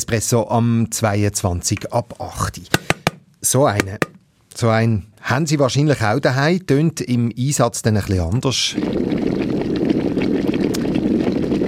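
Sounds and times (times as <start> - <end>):
speech: 0.0 - 9.4
electric kettle boiling water: 8.8 - 11.6.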